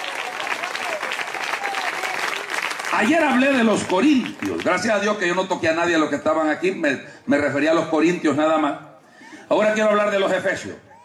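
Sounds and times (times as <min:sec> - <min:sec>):
people cheering: 0:00.0 - 0:04.8
audience applauding: 0:00.0 - 0:04.9
speech: 0:02.9 - 0:08.9, 0:09.5 - 0:10.8.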